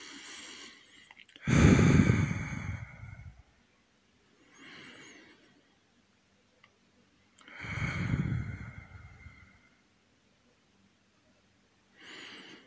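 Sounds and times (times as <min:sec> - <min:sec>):
slow deep breathing close to the microphone: 0:00.0 - 0:03.5, 0:07.4 - 0:09.8, 0:12.0 - 0:12.6.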